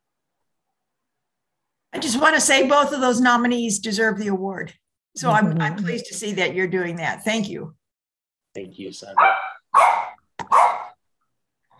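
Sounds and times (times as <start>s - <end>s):
speech: 2.0s - 7.8s, 8.5s - 9.5s
small dog barking: 9.2s - 11.0s.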